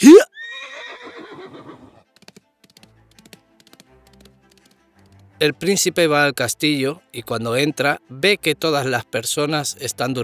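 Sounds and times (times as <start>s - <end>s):
horse neighing: 0.0s - 2.0s
speech: 5.4s - 10.2s.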